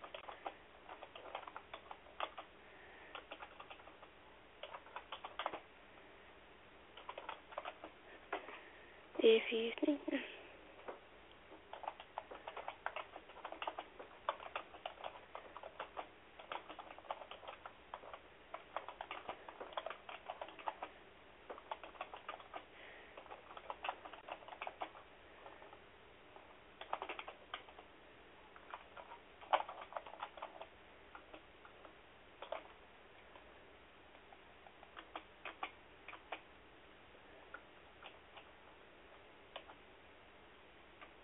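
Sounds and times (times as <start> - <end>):
typing on a computer keyboard: 0.0 - 5.7, 7.0 - 8.5, 10.8 - 25.8, 26.4 - 27.9, 28.5 - 33.5, 34.2 - 36.5, 37.5 - 38.6, 39.5 - 39.8
speech: 9.2 - 10.4.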